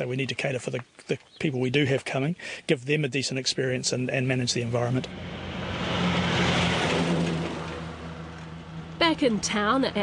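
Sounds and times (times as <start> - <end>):
speech: 0.0 - 5.5, 9.2 - 10.0
logging trucks and milk tankers rumbling past on a town main street: 3.6 - 10.0.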